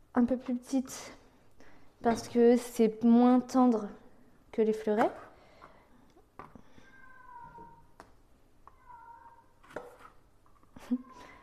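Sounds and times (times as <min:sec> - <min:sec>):
speech: 0:00.2 - 0:01.2, 0:02.0 - 0:04.0, 0:04.6 - 0:05.2
cat meowing: 0:06.8 - 0:07.9, 0:08.7 - 0:09.6.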